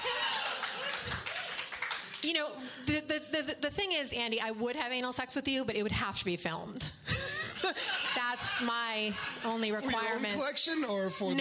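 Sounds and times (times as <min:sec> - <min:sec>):
audience clapping: 0:00.0 - 0:02.4
speech: 0:02.2 - 0:07.0, 0:07.6 - 0:11.3
laughter: 0:07.0 - 0:11.3.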